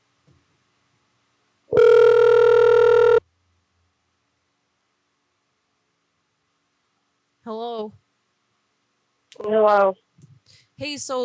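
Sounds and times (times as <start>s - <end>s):
telephone call electronic ringback tone: 1.7s - 3.2s
speech: 9.4s - 10.0s, 10.8s - 11.2s.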